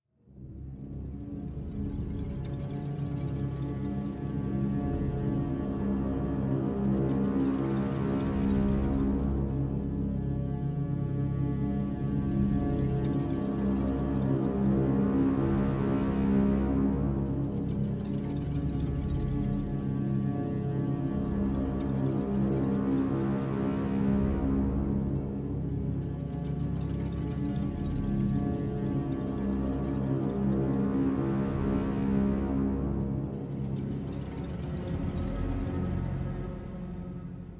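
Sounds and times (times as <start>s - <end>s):
ambient orchestra: 0.3s - 37.5s.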